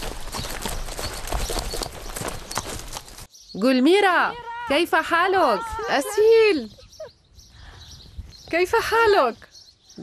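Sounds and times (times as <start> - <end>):
horse hooves clip-clopping at a quick riding pace in a village garden: 0.0 - 3.3
dense outdoor rustling: 0.0 - 10.0
speech: 3.6 - 6.8, 8.5 - 10.0.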